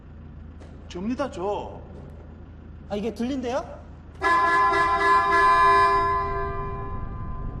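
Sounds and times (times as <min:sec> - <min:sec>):
speech: 0:00.9 - 0:02.0, 0:02.9 - 0:05.5
car horn honking: 0:04.2 - 0:07.5.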